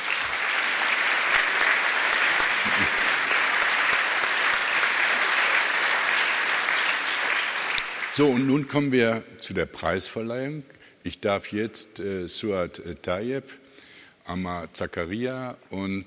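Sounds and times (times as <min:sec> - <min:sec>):
large crowd applauding after a foreign minister's speech: 0:00.0 - 0:08.6
speech: 0:08.2 - 0:13.6, 0:14.3 - 0:16.0.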